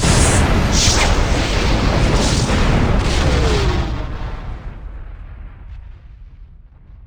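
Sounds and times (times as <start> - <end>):
ships moving at warp: 0.0 - 4.1.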